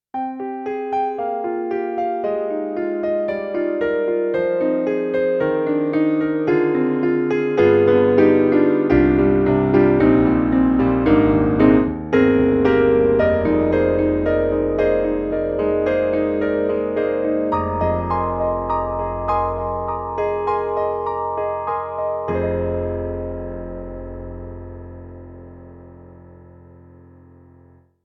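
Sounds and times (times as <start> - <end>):
Kurzweil MicroEnsemble ME-1 dreamy piano: 0.1 - 27.8.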